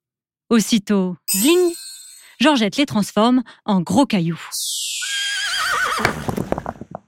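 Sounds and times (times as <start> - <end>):
speech: 0.5 - 4.8, 6.0 - 6.4
horse whinnying: 5.0 - 6.4.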